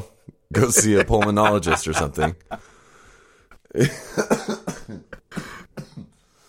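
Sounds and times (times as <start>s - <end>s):
laughter: 0.5s - 2.7s
speech: 0.5s - 2.7s, 3.7s - 5.5s
person coughing harshly: 3.8s - 6.2s.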